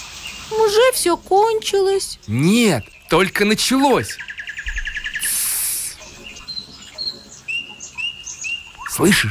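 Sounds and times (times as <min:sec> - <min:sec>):
nightingale singing after rain: 0:00.0 - 0:09.2
speech: 0:00.5 - 0:04.3, 0:09.0 - 0:09.2.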